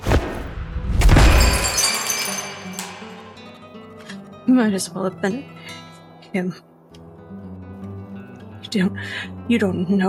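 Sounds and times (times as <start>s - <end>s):
object falling and glass shattering on ground: 1.0s - 3.7s
glass shards tinkling and scattering: 1.3s - 3.6s
speech: 4.5s - 5.6s, 6.3s - 6.7s, 8.7s - 10.0s.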